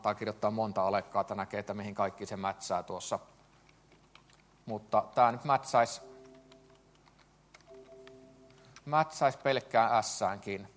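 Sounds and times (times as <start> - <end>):
speech: 0.0 - 3.4, 4.7 - 6.1, 8.8 - 10.7
steady low electrical hum: 0.0 - 10.7
faint typing on a computer keyboard: 3.6 - 4.5, 5.9 - 8.9.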